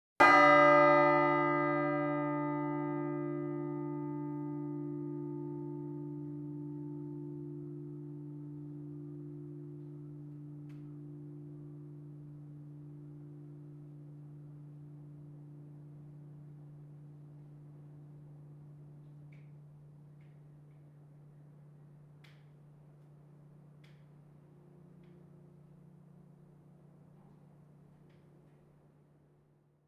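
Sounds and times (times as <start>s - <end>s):
single bell tower chime: 0.2s - 18.4s.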